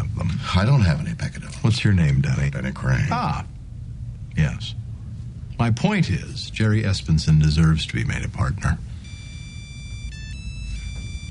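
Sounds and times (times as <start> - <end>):
low rumble: 0.0 - 11.2
speech: 0.6 - 3.5, 4.4 - 4.8, 5.6 - 8.9
camera phone ringtone playing a steady electronic melody: 8.9 - 11.2.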